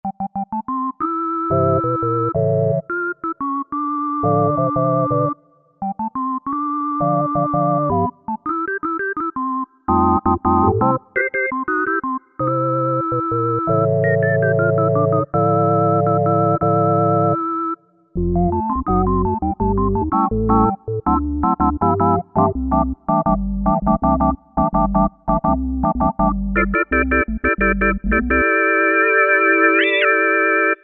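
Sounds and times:
synthesizer organ patch: 0.0 - 30.8.

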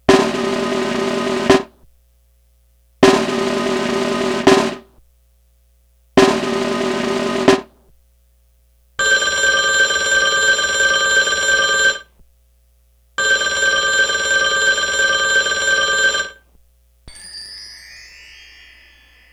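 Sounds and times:
snare drum buzz roll: 0.1 - 1.8, 3.0 - 4.9, 6.2 - 7.8
telephone ringing: 9.0 - 12.1, 13.2 - 16.4
mark tree chimes played upward: 17.1 - 19.3.

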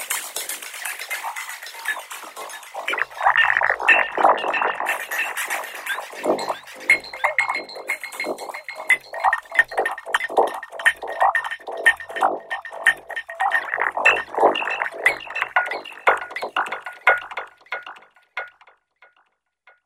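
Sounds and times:
Roland V-Synth factory patch artefacts: 0.9 - 18.1.

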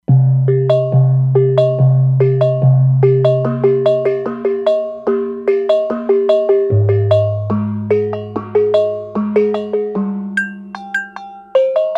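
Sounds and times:
bright bonang patch on synthesizer: 0.1 - 11.8.

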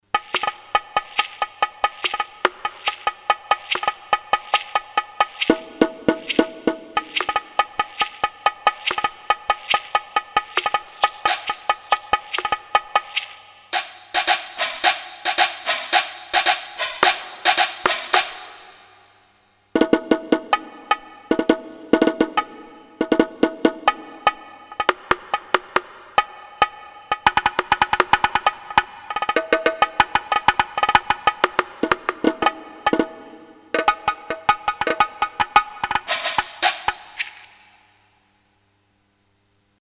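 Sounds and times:
Korg DSS-1 Latin Percussion: 0.1 - 19.1, 19.8 - 38.0.

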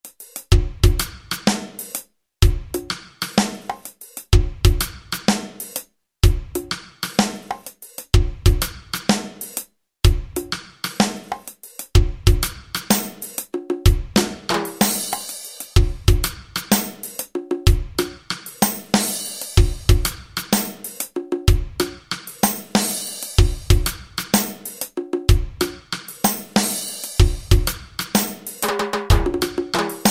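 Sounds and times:
Alesis SR-16 drum machine reggae preset pattern: 0.0 - 30.0.

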